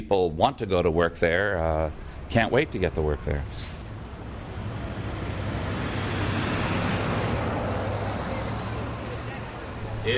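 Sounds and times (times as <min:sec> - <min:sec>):
speech: 0:00.1 - 0:03.8
school bus engines rumbling: 0:00.3 - 0:10.1
road noise from arriving school buses: 0:00.4 - 0:10.1.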